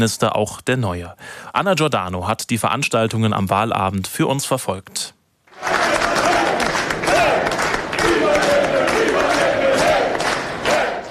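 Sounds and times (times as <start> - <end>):
speech: 0.0 - 5.7
large crowd cheering and chanting at election count: 5.5 - 11.1
people clapping: 5.5 - 11.1
people shouting: 5.6 - 11.1.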